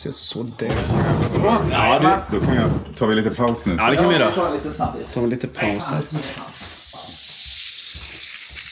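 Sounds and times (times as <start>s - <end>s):
speech: 0.0s - 6.6s
fizzing hiss from an opened cola bottle as cola is poured: 6.2s - 8.7s.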